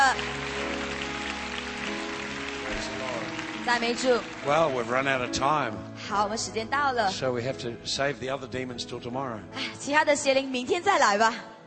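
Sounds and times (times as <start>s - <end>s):
audience applause: 0.0s - 5.6s
speech: 3.7s - 11.5s.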